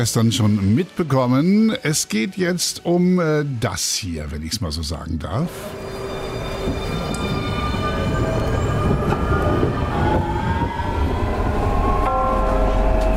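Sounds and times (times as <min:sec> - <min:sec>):
speech: 0:00.0 - 0:05.8
tram running on rails: 0:05.4 - 0:13.1.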